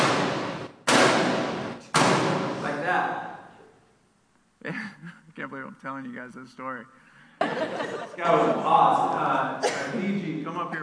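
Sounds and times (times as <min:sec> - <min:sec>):
heavy bangs on a hard counter surface: 0:00.0 - 0:02.6
speech: 0:05.4 - 0:10.8
laughter: 0:07.4 - 0:10.8.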